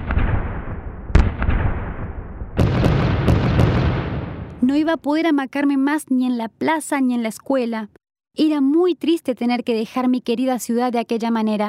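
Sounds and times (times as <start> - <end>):
explosions going off all around in a city heard from inside a bedroom: 0.0 - 4.8
sharp cracking bursts: 2.6 - 4.6
speech: 4.7 - 11.6.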